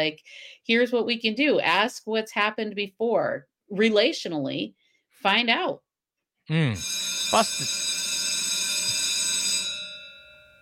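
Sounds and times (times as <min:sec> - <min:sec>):
speech: 0:00.0 - 0:05.8, 0:06.5 - 0:07.9
school bell ringing: 0:06.8 - 0:10.6.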